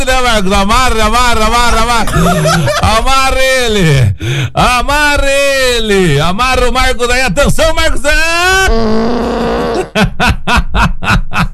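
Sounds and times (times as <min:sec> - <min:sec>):
speech: 0:00.1 - 0:11.5
laughter: 0:01.8 - 0:03.8, 0:09.2 - 0:11.5
drawn-out fart sound effect with a buzzing tone: 0:08.7 - 0:10.0.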